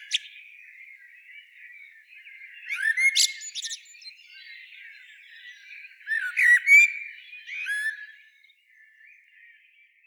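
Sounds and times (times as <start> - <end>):
common blackbird Turdus merula singing fluty warbled phrases: 0.0 - 8.2.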